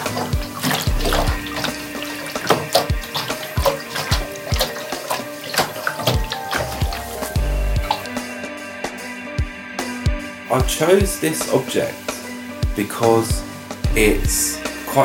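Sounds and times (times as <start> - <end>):
water sloshing in a scuffed plastic water bottle being shaken: 0.0 - 8.2
speech: 10.6 - 12.0, 12.8 - 13.4, 14.0 - 15.0.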